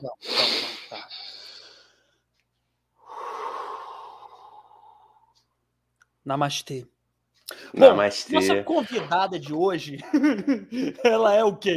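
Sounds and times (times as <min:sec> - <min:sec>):
deep breath taken during a relaxation breathing exercise: 0:00.3 - 0:02.2, 0:03.0 - 0:05.5
speech: 0:06.3 - 0:06.9, 0:07.7 - 0:11.7
laughter: 0:10.0 - 0:11.5.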